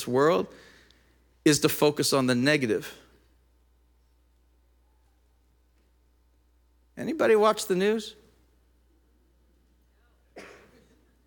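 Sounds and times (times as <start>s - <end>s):
speech: 0.0s - 0.7s, 1.4s - 3.0s, 7.0s - 8.2s
quiet hum: 0.0s - 11.2s
person sneezing in the room: 10.4s - 10.8s.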